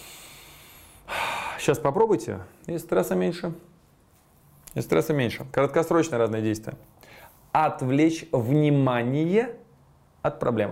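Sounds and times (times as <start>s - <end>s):
deep inhale and exhale close to the mic: 0.0s - 1.7s, 7.0s - 7.5s
speech: 1.6s - 3.7s, 4.7s - 9.6s, 10.2s - 10.6s.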